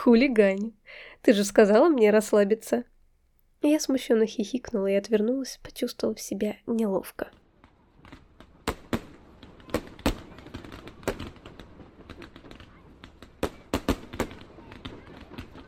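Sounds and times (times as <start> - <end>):
speech: 0.0 - 2.9, 3.6 - 7.4
fireworks bursting in the sky: 7.2 - 15.6.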